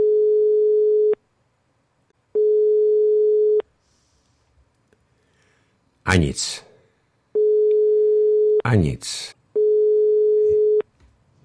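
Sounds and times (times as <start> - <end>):
telephone ringing tone over the line: 0.0 - 1.2, 2.4 - 3.6, 7.4 - 8.6, 9.6 - 10.9
speech: 6.1 - 6.7, 8.6 - 9.4.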